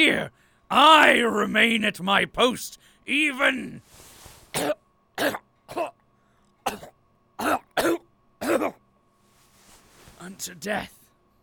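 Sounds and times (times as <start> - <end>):
speech: 0.0 - 4.0, 4.6 - 6.0, 6.7 - 8.8, 10.2 - 11.0
faint steady hum: 0.0 - 11.4
person coughing harshly: 4.5 - 6.0, 6.6 - 8.8
throat clearing: 6.7 - 8.8.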